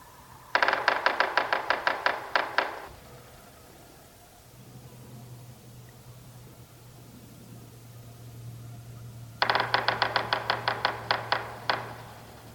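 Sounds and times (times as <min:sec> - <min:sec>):
yellow-bellied sapsucker drumming: 0:00.0 - 0:03.9, 0:09.4 - 0:12.5.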